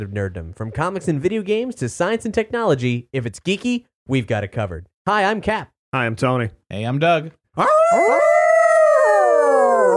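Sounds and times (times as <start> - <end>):
speech: 0.0 - 8.4
person imitating a dog howl: 7.6 - 9.9.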